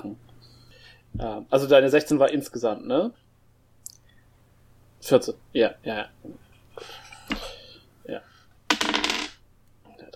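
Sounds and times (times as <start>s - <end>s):
speech: 1.1s - 3.2s, 5.0s - 7.0s, 8.1s - 8.3s
small six-sided die rolled on a hard table: 8.7s - 9.4s.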